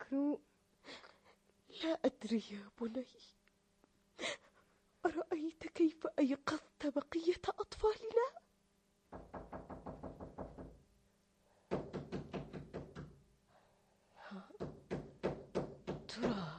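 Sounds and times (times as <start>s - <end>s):
speech: 0.1s - 1.0s, 1.8s - 3.4s, 5.0s - 8.4s
rapid firm knocking on a door: 9.1s - 10.9s, 11.7s - 13.2s, 14.6s - 16.5s.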